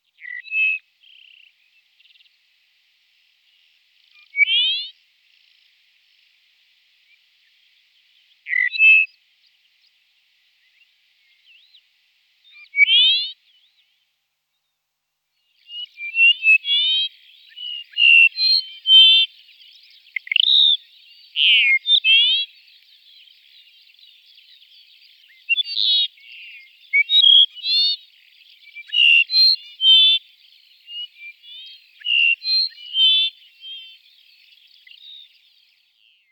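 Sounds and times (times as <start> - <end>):
Dupont's lark Chersophilus duponti: 0.2 - 1.5, 4.2 - 5.0, 8.5 - 9.1, 12.6 - 13.4, 15.7 - 19.5, 20.1 - 22.7, 25.3 - 34.1.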